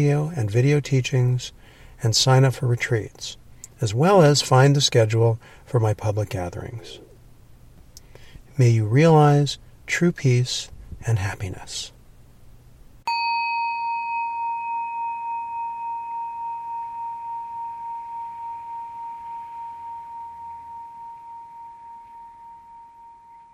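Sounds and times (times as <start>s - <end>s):
speech: 0.0s - 7.0s, 8.6s - 12.0s
single bell ringing with a clear pure tone: 13.1s - 23.5s.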